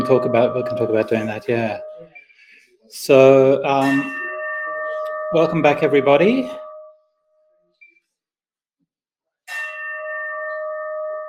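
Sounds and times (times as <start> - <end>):
bell struck sharply with a bright humming tone: 0.0 - 2.2, 3.1 - 7.0, 9.5 - 11.2
speech: 0.1 - 1.9, 2.9 - 4.2, 5.3 - 6.6.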